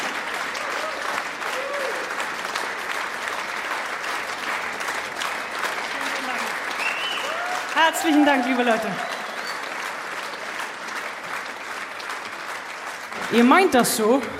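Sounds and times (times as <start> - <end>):
faint voices and cheers: 0.0 - 2.2, 6.7 - 9.7
sustained audience applause for a guitarist: 0.0 - 14.3
speech: 7.9 - 9.1, 13.3 - 14.3.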